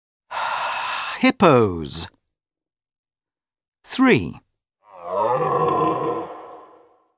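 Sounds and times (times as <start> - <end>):
speech: 1.2 - 2.2, 3.8 - 4.4
deer stag roaring: 4.8 - 7.0.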